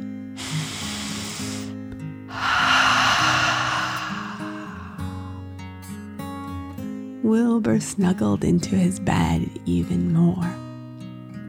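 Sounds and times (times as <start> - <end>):
deep breath in and out: 0.4 - 1.7, 2.3 - 5.4
speech: 7.3 - 10.6.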